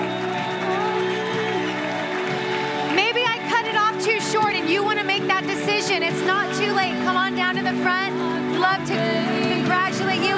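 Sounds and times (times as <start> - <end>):
audience cheering and calling out: 0.0 - 5.4
speech: 6.0 - 10.3.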